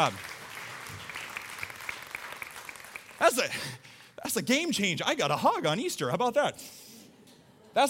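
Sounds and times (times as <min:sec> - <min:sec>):
speech: 0:00.0 - 0:00.3, 0:03.2 - 0:06.8
audience applause: 0:00.0 - 0:03.5.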